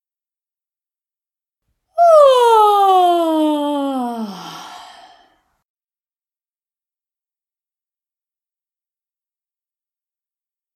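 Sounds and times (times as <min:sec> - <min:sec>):
person yawning: 0:02.0 - 0:05.3.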